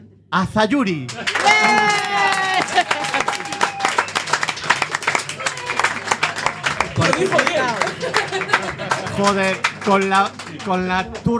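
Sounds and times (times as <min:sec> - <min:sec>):
speech: 0:00.3 - 0:02.9, 0:07.2 - 0:11.3
crowd applauding: 0:01.1 - 0:11.3
laughter: 0:01.1 - 0:11.3
cheers and whoops: 0:01.2 - 0:04.6, 0:05.2 - 0:07.1.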